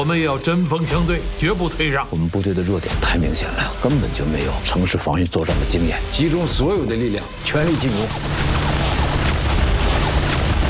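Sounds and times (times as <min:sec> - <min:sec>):
speech: 0:00.0 - 0:08.5
artillery shells exploding on defensive bunkers in a Chinese Civil War battle: 0:08.1 - 0:10.6.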